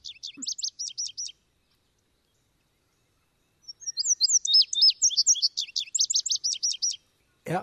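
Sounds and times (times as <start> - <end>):
bright bubbly bird song with up-down chirping notes: 0.0 - 1.4, 3.6 - 7.0
speech: 7.5 - 7.6.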